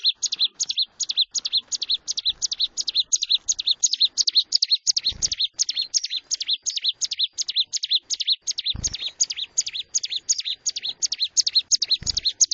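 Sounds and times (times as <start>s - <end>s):
bar-winged prinia singing high bright chip notes: 0.0s - 12.5s.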